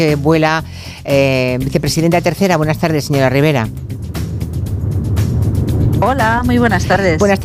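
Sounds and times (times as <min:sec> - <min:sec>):
speech: 0:00.0 - 0:04.0, 0:06.0 - 0:07.4
car interior road noise: 0:03.1 - 0:07.4.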